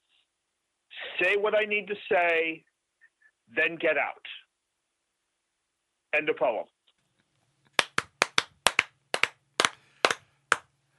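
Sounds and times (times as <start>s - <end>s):
speech: 1.2s - 2.7s, 3.5s - 4.3s, 6.1s - 6.7s
single person clapping slowly: 7.8s - 10.7s.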